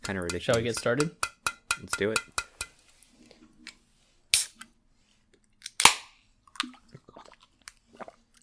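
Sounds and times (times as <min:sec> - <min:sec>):
speech: 0:00.1 - 0:02.4
big gulp of a drink: 0:06.4 - 0:08.4.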